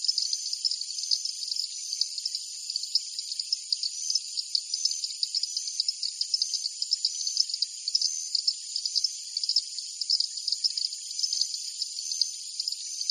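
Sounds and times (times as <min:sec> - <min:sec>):
insects chirping in chorus in a jungle at night: 0:00.0 - 0:13.0.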